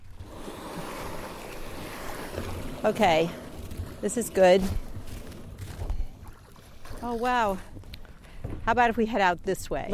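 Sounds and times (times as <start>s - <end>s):
sea water and waves washing around a kayak paddling off the Massachusetts coast: 0.0s - 8.5s
speech: 2.8s - 3.4s, 4.0s - 4.8s, 7.0s - 7.7s, 8.7s - 9.9s.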